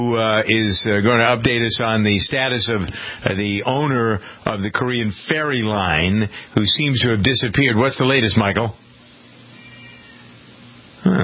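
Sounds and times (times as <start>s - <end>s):
speech: 0.0s - 8.8s
low hum: 0.0s - 11.2s
cat meowing: 9.6s - 10.4s.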